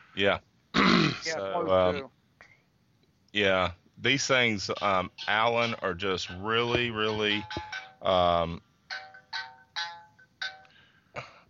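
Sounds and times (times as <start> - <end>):
speech: 0.2 - 2.2, 3.3 - 8.7
phone ringtone with electronic tone and chiming notes: 8.9 - 10.7.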